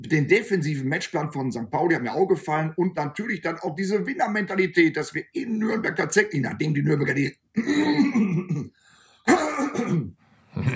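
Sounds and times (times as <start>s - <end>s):
speech: 0.0s - 10.7s
person clearing throat: 7.6s - 10.7s
person coughing: 7.6s - 10.7s.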